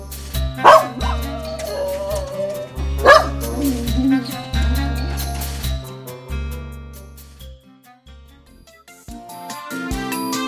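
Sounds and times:
steady music: 0:00.0 - 0:10.4
dog barking and yipping: 0:00.6 - 0:05.5.

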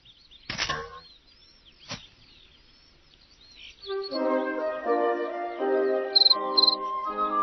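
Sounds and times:
sharp clicks: 0:00.5 - 0:00.9
soft sustained musical tones: 0:03.5 - 0:07.4
cricket chirping by rubbing wings: 0:06.2 - 0:06.8.

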